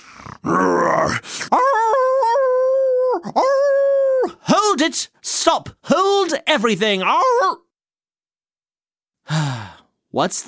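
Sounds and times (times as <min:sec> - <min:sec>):
wolf growling cry: 0:00.0 - 0:04.4
speech: 0:00.2 - 0:01.3, 0:04.8 - 0:07.6, 0:10.2 - 0:10.4.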